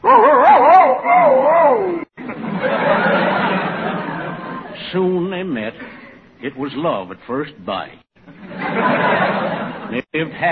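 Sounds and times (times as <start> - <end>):
person imitating a male dog howling: 0.0 - 2.1
laughter: 2.2 - 4.8, 8.2 - 10.5
speech: 4.9 - 8.0, 8.8 - 10.5.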